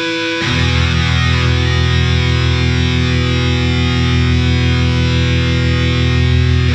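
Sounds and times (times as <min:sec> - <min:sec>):
spacey funk guitar: 0:00.0 - 0:06.7.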